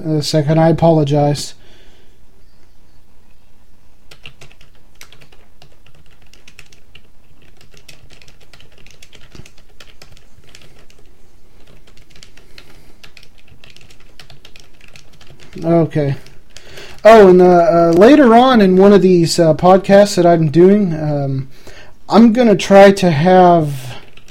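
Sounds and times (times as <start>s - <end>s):
speech: 0.0s - 1.6s, 15.6s - 16.3s, 17.0s - 23.8s
typing on a computer keyboard: 4.1s - 17.2s, 24.0s - 24.3s.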